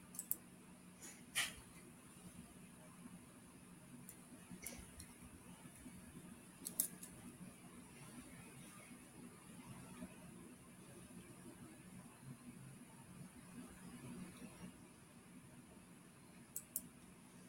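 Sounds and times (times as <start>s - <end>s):
keyboard clicks: 0.0s - 0.4s, 6.6s - 7.2s, 16.5s - 16.9s
low steady hum: 0.0s - 17.4s.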